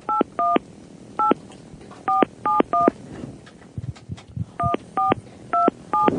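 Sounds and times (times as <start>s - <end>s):
dual-tone beeps of a touch-tone phone keypad: 0.1s - 0.6s, 2.1s - 2.9s, 4.6s - 6.1s.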